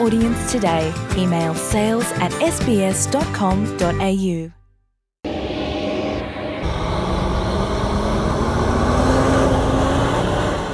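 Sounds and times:
speech: 0.0s - 4.6s
heavy aid trucks accelerating across a border crossing: 5.3s - 10.7s
road and wind noise: 7.2s - 10.7s.

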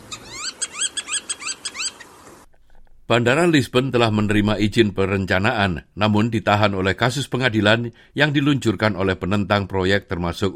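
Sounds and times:
black-tailed godwit calls: 0.1s - 2.1s
speech: 3.1s - 10.5s.

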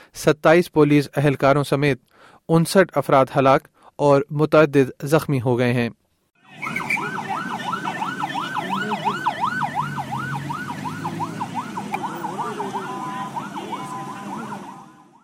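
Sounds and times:
speech: 0.1s - 6.0s
dense rumble of street traffic and engines: 6.4s - 15.2s
several ambulance sirens wailing on city streets: 6.4s - 15.2s.

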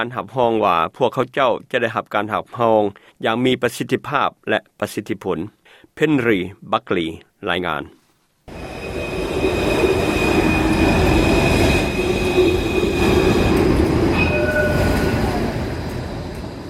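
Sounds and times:
speech: 0.0s - 8.7s
thin high-pitched tram or train wheel squeals: 8.5s - 15.7s
Melbourne tram or train rumbling along its tracks: 8.5s - 16.6s.

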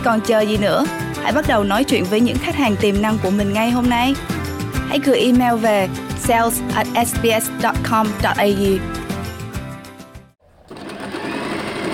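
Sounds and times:
speech: 0.0s - 9.0s
sewing machines whirring in a workshop: 10.6s - 11.9s.

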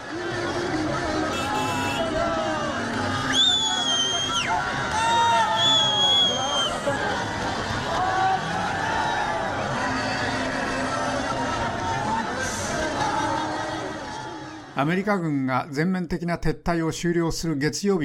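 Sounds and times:
dense outdoor crowd cheering and shouting: 0.0s - 14.8s
car horns blaring and honking: 1.3s - 2.2s
speech: 14.8s - 18.0s.

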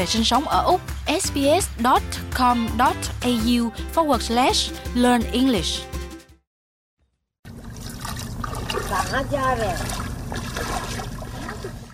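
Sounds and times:
speech: 0.0s - 5.9s, 9.1s - 11.0s
river water sloshing as a man wades: 7.5s - 11.9s.

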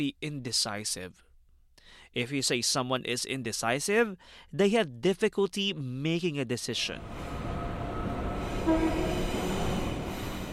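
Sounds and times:
speech: 0.0s - 1.3s, 1.9s - 7.5s, 8.7s - 9.3s
moving train rumbling heard aboard: 7.0s - 10.5s
faint train horn: 7.4s - 10.5s.

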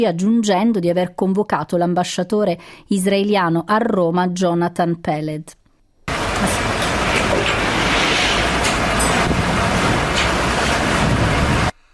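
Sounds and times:
speech: 0.0s - 5.6s
aid trucks rumbling past: 6.1s - 11.8s
gusty wind buffeting the microphone: 6.1s - 11.8s.

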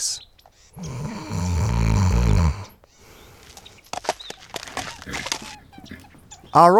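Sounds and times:
person imitating snoring: 0.8s - 2.8s
speech: 6.6s - 6.7s.

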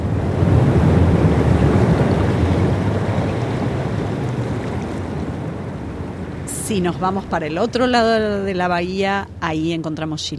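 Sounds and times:
ocean waves breaking on a back beach on a peninsula: 0.0s - 10.3s
wind: 0.0s - 10.3s
speech: 6.7s - 10.3s.

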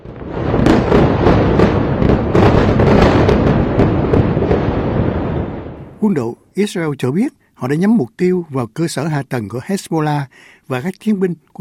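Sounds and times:
barrage of large explosions near Beirut's main airport: 0.0s - 6.2s
speech: 6.0s - 11.6s.

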